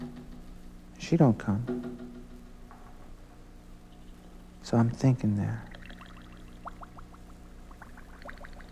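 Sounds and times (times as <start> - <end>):
steady low hum: 0.0 - 8.6
speech: 1.0 - 1.8, 4.7 - 5.7
water sizzling and bubbling: 5.7 - 8.6.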